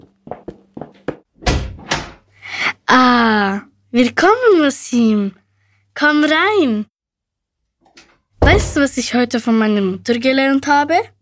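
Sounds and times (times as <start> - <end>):
door thumping and creaking as it swings open: 1.4 - 2.2, 7.9 - 9.0
speech: 2.9 - 5.4, 6.0 - 6.9, 8.0 - 11.2.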